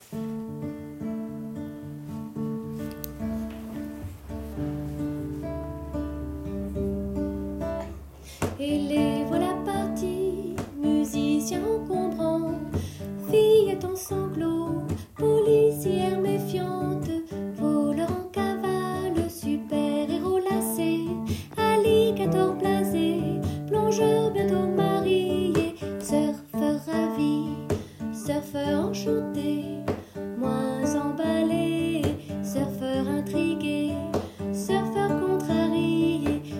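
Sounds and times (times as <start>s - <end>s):
guitar: 0.0s - 36.5s
person singing: 8.6s - 36.5s.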